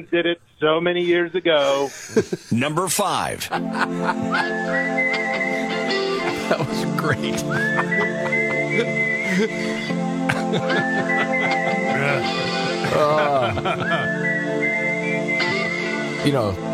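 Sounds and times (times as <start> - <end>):
speech: 0.0 - 5.7, 6.5 - 11.3, 12.0 - 14.3, 16.2 - 16.7
laughter: 1.0 - 14.5
full rock band playing: 3.6 - 14.3, 15.0 - 16.2
whistled melody of a rock song: 4.2 - 16.6.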